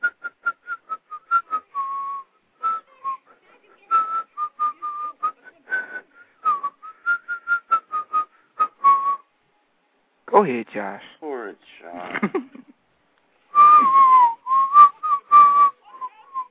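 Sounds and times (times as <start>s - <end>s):
person whistling a bouncy melody: 0.0s - 9.2s, 13.5s - 16.5s
speech: 10.4s - 12.6s.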